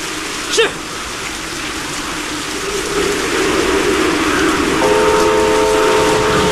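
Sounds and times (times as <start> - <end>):
heavy rain hissing: 0.0 - 6.5
train rumbling on a test run over a rebuilt railway section: 1.6 - 6.5.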